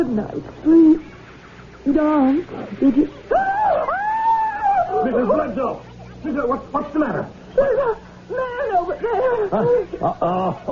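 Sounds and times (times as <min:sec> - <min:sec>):
speech: 0:00.2 - 0:01.0, 0:02.0 - 0:03.8, 0:05.0 - 0:10.7
laughter: 0:00.6 - 0:10.7
woman screaming: 0:03.3 - 0:05.0.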